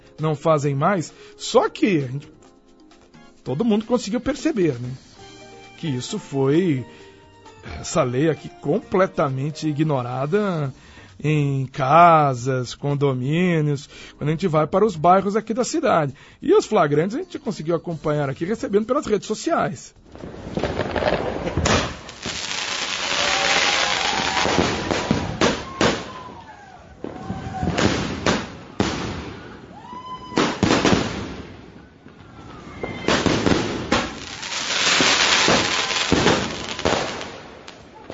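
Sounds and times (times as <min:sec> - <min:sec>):
speech: 0:00.2 - 0:02.4, 0:03.4 - 0:05.1, 0:05.8 - 0:07.0, 0:07.6 - 0:21.7
fireworks and firecrackers exploding with bangs and crackling pops: 0:20.0 - 0:38.1.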